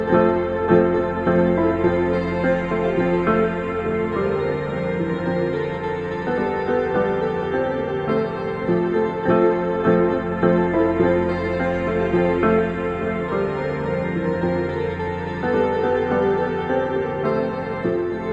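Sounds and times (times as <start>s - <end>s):
ambient new age jingle bells loop: 0.0s - 18.3s.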